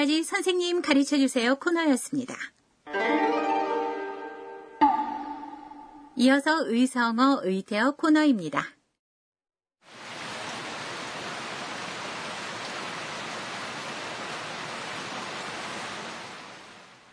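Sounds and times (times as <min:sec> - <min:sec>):
speech: 0:00.0 - 0:03.4, 0:06.2 - 0:08.8
heavy rain pouring: 0:09.8 - 0:17.1.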